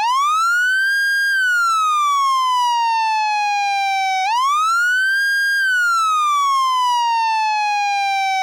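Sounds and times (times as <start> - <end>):
Federal Signal MS4000 siren in Scan mode: 0.0 - 8.4.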